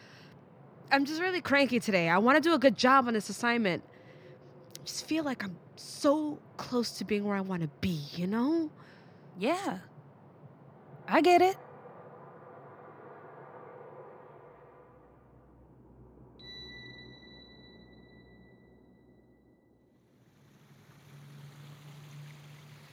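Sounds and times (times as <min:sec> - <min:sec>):
speech: 0:00.9 - 0:03.9, 0:04.8 - 0:09.9, 0:11.1 - 0:11.6
thin high ringing tone: 0:16.4 - 0:19.7
small waterfall splashing and rushing: 0:20.4 - 0:22.9.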